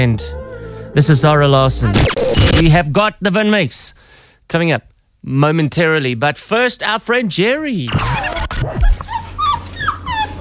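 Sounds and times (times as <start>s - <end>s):
speech: 0.0s - 9.2s
dog whimpering and yelping: 8.0s - 10.4s.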